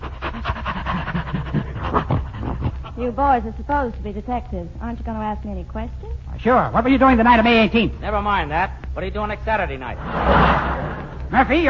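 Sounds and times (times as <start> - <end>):
heavy panting from someone out of breath after climbing a hill: 0.0 - 3.2
speech: 3.0 - 10.7, 11.3 - 11.6.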